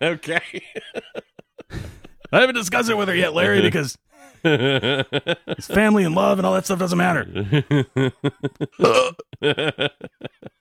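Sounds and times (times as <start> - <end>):
speech: 0.0 - 1.2, 2.3 - 10.4
laughter: 0.0 - 10.6
person burping loudly: 8.8 - 9.4
person making short voiced sounds: 8.8 - 9.4.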